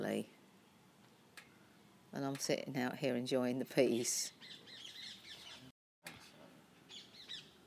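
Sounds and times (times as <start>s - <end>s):
speech: 0.1s - 0.4s, 2.1s - 4.6s
birds calling as they fly overhead: 0.2s - 2.1s, 3.7s - 7.6s.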